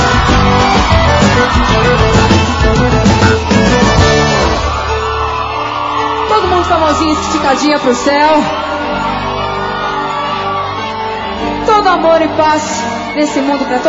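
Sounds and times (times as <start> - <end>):
crowd of women screaming and whooping: 0.0 - 13.8
live music: 0.0 - 13.8
speech: 7.0 - 8.8, 11.9 - 13.8.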